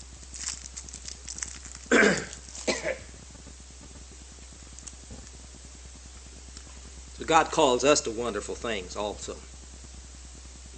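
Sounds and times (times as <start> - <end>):
person giving a sermon coughing: 1.9 - 3.1
speech: 7.3 - 9.5.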